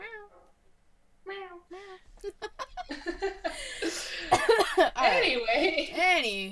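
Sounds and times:
person imitating a cat meowing: 0.0s - 0.3s
person laughing: 2.2s - 4.9s
speech: 5.1s - 6.5s.

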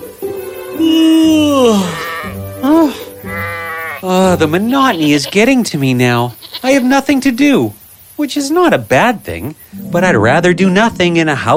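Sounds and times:
lower overlapping calls from the sheep flock: 0.0s - 11.5s
sheep bleating: 1.6s - 2.5s, 3.2s - 5.5s, 6.3s - 6.8s
speech: 4.3s - 11.5s.

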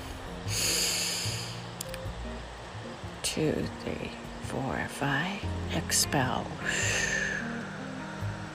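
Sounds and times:
deep breath drawn in through the nose: 0.0s - 1.7s, 6.6s - 8.4s
speech: 3.4s - 7.3s.

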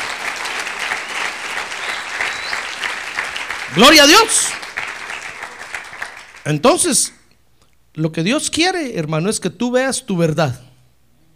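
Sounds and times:
audience applauding: 0.0s - 6.6s
speech: 3.7s - 4.6s, 6.4s - 7.2s, 8.0s - 10.7s.

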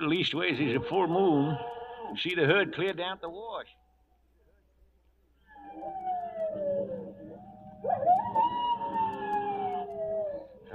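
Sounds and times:
speech: 0.0s - 3.8s
coyote howling: 0.4s - 2.6s, 5.4s - 10.7s.

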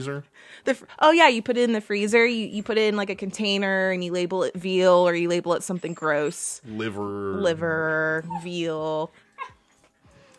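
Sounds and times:
speech: 0.0s - 9.2s
dog whimpering: 7.2s - 10.3s
dog yipping: 7.9s - 10.2s.

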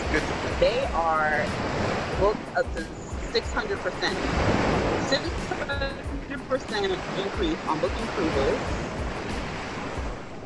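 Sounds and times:
ocean waves roaring: 0.0s - 10.4s
speech: 0.6s - 8.9s.

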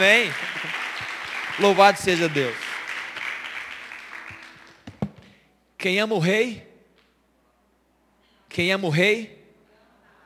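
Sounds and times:
speech: 0.0s - 0.5s, 1.6s - 2.6s, 5.8s - 6.7s, 8.5s - 9.4s
audience applause: 0.1s - 4.3s
sharp thumps: 4.9s - 5.4s.

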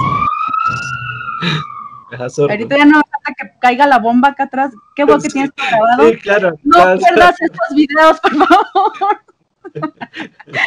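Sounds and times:
ambulance siren wailing: 0.0s - 3.2s, 4.4s - 7.8s
low rumble of street traffic: 0.0s - 9.1s
speech: 1.4s - 10.6s
laughter: 5.2s - 10.6s.

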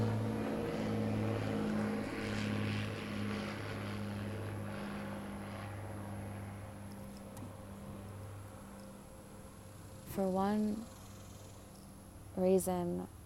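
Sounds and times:
propeller airplane droning overhead: 0.0s - 13.2s
speech: 10.2s - 10.9s, 12.4s - 13.2s.

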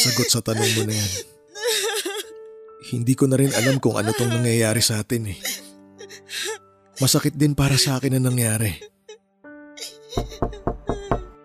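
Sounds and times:
speech: 0.0s - 1.4s, 2.9s - 5.6s, 7.0s - 8.9s, 10.1s - 10.5s
nurses bringing a baby knocking on a door: 10.2s - 11.4s.

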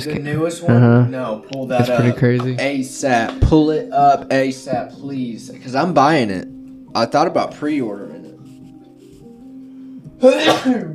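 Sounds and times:
speech: 0.0s - 8.2s, 10.2s - 10.9s
sneeze: 10.3s - 10.9s.

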